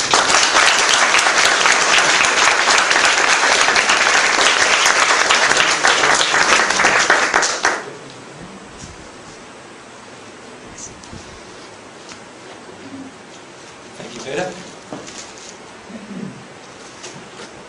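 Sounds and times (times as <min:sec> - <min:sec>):
large audience applauding: 0:00.0 - 0:08.0.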